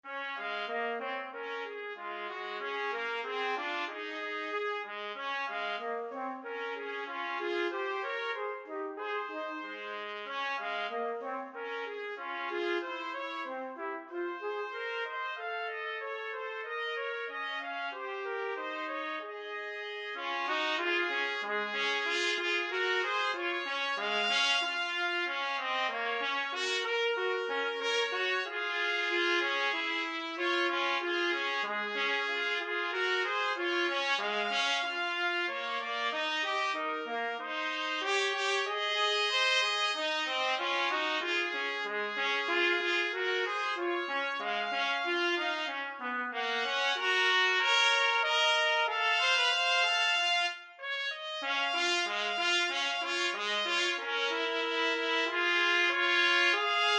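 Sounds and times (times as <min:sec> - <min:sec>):
trumpet playing: 0:00.0 - 0:56.9.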